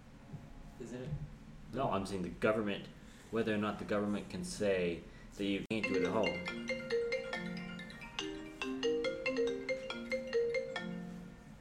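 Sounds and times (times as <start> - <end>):
speech: 0.8 - 6.6
phone ringing with a melodic electronic ringtone: 5.8 - 11.6.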